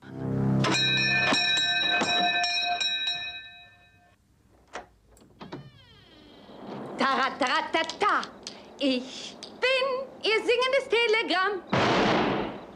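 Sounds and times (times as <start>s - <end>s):
doorbell chiming in film scene: 0.7s - 4.2s
speech: 7.2s - 12.1s.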